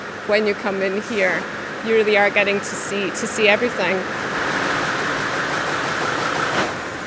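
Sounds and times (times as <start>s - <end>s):
speech: 0.3s - 4.2s
weaving loom running with clatter and hum: 0.9s - 7.0s
clunk of a weaving loom stopping: 4.1s - 7.0s.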